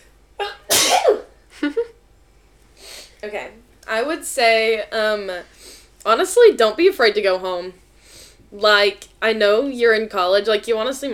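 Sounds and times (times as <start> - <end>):
person sneezing: 0.4 - 1.4
speech: 3.2 - 7.8, 8.5 - 11.1.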